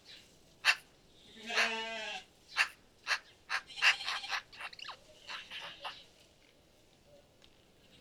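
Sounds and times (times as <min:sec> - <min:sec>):
Eurasian magpie giving harsh scratchy calls: 0:00.6 - 0:00.8, 0:02.5 - 0:06.0.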